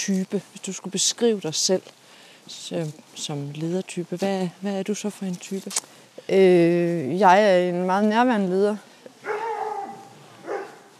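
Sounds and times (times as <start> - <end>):
speech: 0.0 - 8.9
dog giving a whining bark: 9.2 - 10.9.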